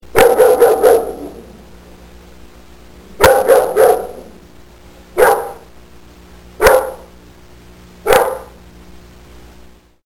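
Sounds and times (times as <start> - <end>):
dog barking loudly: 0.1 - 1.4, 3.2 - 4.3, 5.2 - 5.7, 6.6 - 7.1, 8.0 - 8.6.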